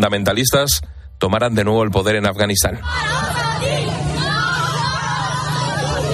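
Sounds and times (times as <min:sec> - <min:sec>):
speech: 0:00.0 - 0:04.1
dense agitated crowd of voices clamoring in the street at a women's protest: 0:02.8 - 0:06.1
overlapping shouts and raised cries: 0:02.8 - 0:06.1.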